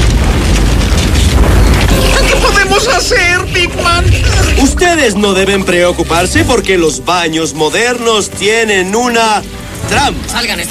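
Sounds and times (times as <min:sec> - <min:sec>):
loud explosion boom: 0:00.0 - 0:05.7
crackling debris from explosion: 0:00.0 - 0:10.6
ringing tones: 0:01.9 - 0:06.2
speech: 0:03.1 - 0:10.6.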